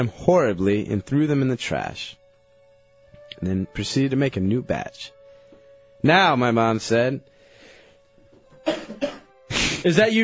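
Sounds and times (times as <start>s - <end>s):
speech: 0.0s - 2.2s, 3.3s - 5.2s, 6.0s - 7.3s, 9.8s - 10.2s
harsh coughs: 8.6s - 9.8s.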